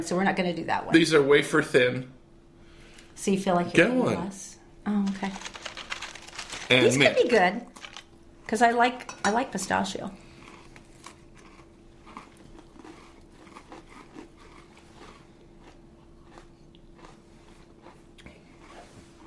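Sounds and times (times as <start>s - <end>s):
speech: 0.0s - 2.2s, 3.2s - 5.6s, 6.7s - 7.7s, 8.5s - 10.2s
crisp chewing of cookies: 5.0s - 8.6s, 10.1s - 19.2s.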